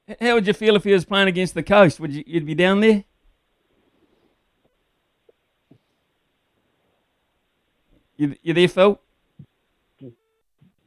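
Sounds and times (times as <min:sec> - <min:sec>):
speech: 0:00.1 - 0:03.1, 0:08.2 - 0:09.1, 0:10.0 - 0:10.2
brief steady tone on a phone line: 0:10.0 - 0:10.8.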